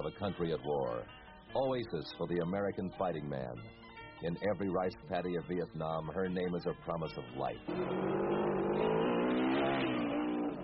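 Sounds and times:
speech: 0.0 - 10.0
dense traffic noise on a crowded city street: 6.5 - 10.6
car engines revving on a crowded city street: 7.6 - 10.6.

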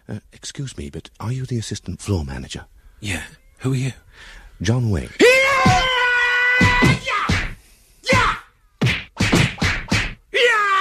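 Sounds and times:
speech: 0.1 - 5.9
person shouting battle cries: 5.2 - 7.4, 8.0 - 8.5, 10.3 - 10.7
martial-arts strikes in a kung fu fight: 5.6 - 5.9, 6.6 - 10.2.

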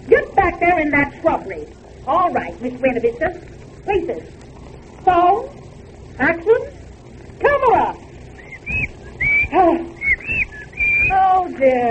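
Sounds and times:
speech: 0.6 - 4.4, 5.0 - 5.6, 6.2 - 6.8, 7.4 - 8.0, 9.5 - 10.0, 11.1 - 11.8
whistle blown into a microphone making bird-like whistling: 8.4 - 11.3.

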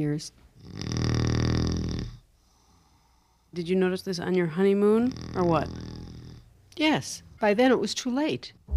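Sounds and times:
speech: 0.0 - 1.0, 3.6 - 5.9, 6.7 - 8.6
man snoring with rattling inhale: 0.6 - 3.1, 5.0 - 6.5.

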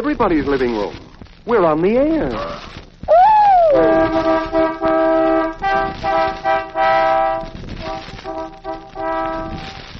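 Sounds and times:
speech: 0.0 - 4.9
Kaiser Fraser car horns honking a harmonized melody: 3.8 - 9.7.

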